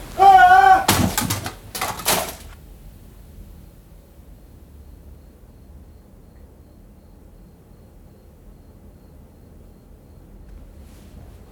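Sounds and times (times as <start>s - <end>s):
clattering burst of noise: 0.0s - 2.6s
typewriter hurled against a door crashing: 0.0s - 2.6s.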